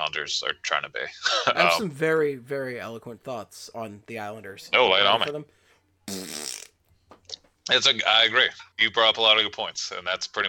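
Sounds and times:
speech: 0:00.1 - 0:06.6, 0:07.7 - 0:10.4
fart noise: 0:06.1 - 0:06.8.

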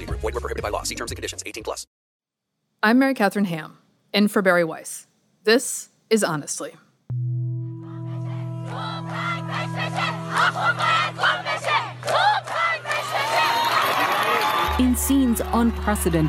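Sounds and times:
speech: 0:00.2 - 0:02.0, 0:02.8 - 0:07.4, 0:14.8 - 0:16.2
large outdoor protest crowd chanting and cheering: 0:07.8 - 0:16.2.

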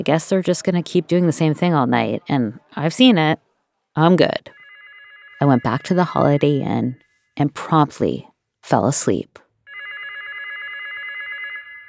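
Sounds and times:
speech: 0:00.0 - 0:04.6, 0:05.4 - 0:09.4
hotel telephone ringing with electronic trill: 0:04.2 - 0:07.0, 0:09.6 - 0:11.8.

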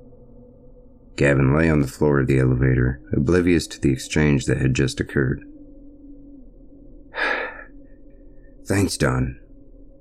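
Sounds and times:
quiet low hum: 0:00.0 - 0:10.0
speech: 0:01.2 - 0:05.5, 0:08.7 - 0:09.4
heavy breathy panting exhale: 0:07.2 - 0:07.7.

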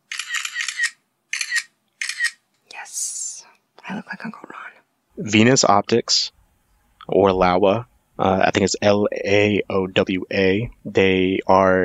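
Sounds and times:
SLR camera shutter clicks with mirror flipping: 0:00.1 - 0:02.4
speech: 0:03.9 - 0:04.5, 0:05.2 - 0:06.4, 0:07.1 - 0:11.8.

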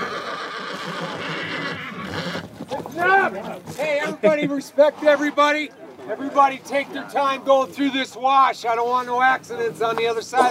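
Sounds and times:
sharp horse whinny: 0:00.0 - 0:03.4
busy noisy outdoor bustle at start of horse race: 0:00.0 - 0:10.4
muddled clatter of horse movement: 0:02.1 - 0:04.1
speech: 0:03.0 - 0:10.4.

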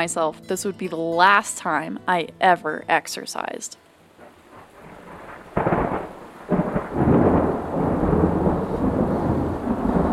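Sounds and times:
speech: 0:00.0 - 0:03.8
steady rain: 0:03.9 - 0:10.1
thunder from an approaching electrical storm: 0:04.2 - 0:10.1.

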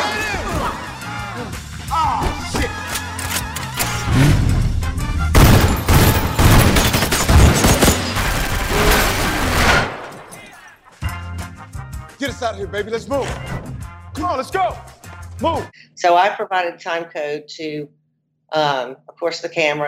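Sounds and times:
driving music track: 0:00.0 - 0:06.4, 0:11.0 - 0:15.7
rapid bursts of gunfire: 0:05.3 - 0:10.3
speech: 0:12.5 - 0:13.5, 0:14.2 - 0:19.8.

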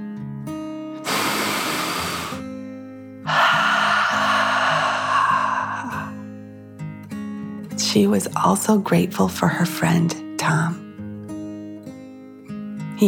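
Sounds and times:
slow deep breath in and out during a children's meditation: 0:01.0 - 0:02.5, 0:03.2 - 0:06.4
speech: 0:07.9 - 0:10.8.

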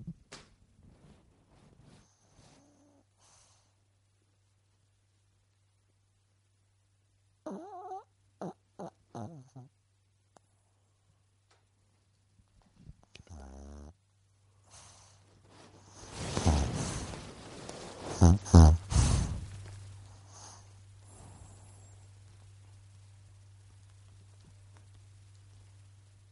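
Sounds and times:
low steady hum: 0:00.0 - 0:26.2
dog snoring: 0:07.4 - 0:09.7, 0:13.0 - 0:14.0, 0:15.8 - 0:17.3, 0:18.0 - 0:22.1.

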